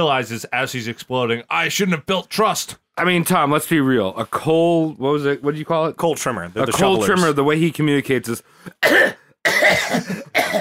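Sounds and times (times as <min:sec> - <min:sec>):
speech: 0:00.0 - 0:10.2
person coughing: 0:08.7 - 0:10.6.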